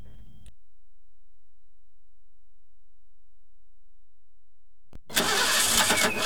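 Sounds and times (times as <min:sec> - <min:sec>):
car engine with the wrong fuel struggling to start: 0:05.1 - 0:06.2.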